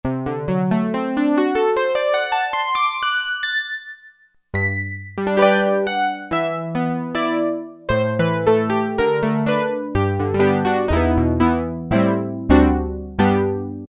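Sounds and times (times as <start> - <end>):
Roland Juno-60 synthesizer harp factory preset: 0.1 - 13.8.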